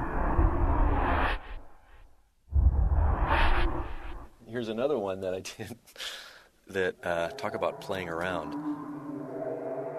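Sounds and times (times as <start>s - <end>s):
transition whoosh sound effect: 0.2s - 4.3s
speech: 4.6s - 8.9s.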